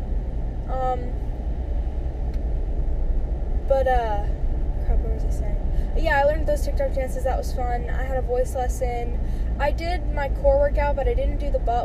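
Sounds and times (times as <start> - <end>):
car cabin road and engine drone while driving: 0.0 - 11.8
speech: 0.9 - 1.2, 3.7 - 4.4, 5.0 - 11.8.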